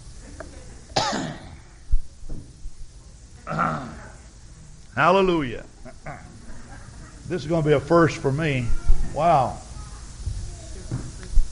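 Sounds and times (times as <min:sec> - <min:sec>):
harsh throaty coughs: 0:01.0 - 0:01.7
faint thump: 0:02.2 - 0:02.6, 0:10.2 - 0:11.5
speech: 0:03.5 - 0:03.9, 0:05.0 - 0:06.2, 0:07.3 - 0:09.6.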